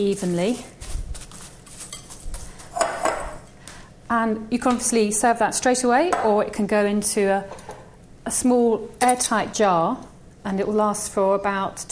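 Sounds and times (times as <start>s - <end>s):
speech: 0.0s - 0.8s, 4.1s - 7.7s, 8.3s - 11.8s
spoon scraping and clinking against a bowl stirring coconut cereal mix: 0.8s - 3.4s.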